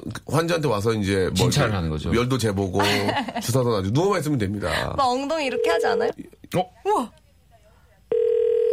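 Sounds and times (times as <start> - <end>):
speech: 0.3 - 7.2
laughter: 2.8 - 3.6
steady electronic telephone tone as a call is being placed: 8.1 - 8.7.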